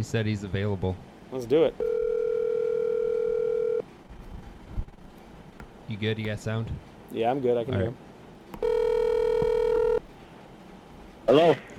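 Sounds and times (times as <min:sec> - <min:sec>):
speech: 0:00.0 - 0:02.0, 0:05.9 - 0:08.7, 0:11.3 - 0:11.7
steady electronic telephone tone as a call is dialed: 0:01.8 - 0:03.8, 0:08.6 - 0:10.0.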